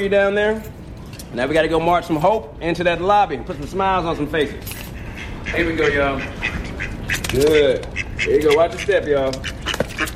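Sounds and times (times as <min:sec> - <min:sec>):
speech: 0:00.0 - 0:04.8, 0:05.5 - 0:06.6, 0:07.3 - 0:09.6
ducks quacking in short nasal bursts: 0:04.4 - 0:10.1.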